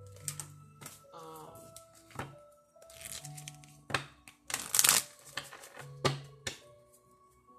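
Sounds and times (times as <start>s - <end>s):
deck of jar cards being shuffled: 2.8s - 5.9s.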